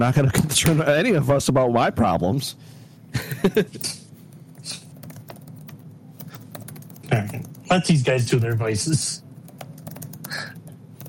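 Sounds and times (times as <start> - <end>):
speech: 0.0 - 4.0, 7.1 - 9.2
rapid typing on a computer keyboard: 4.9 - 7.6, 9.4 - 11.0.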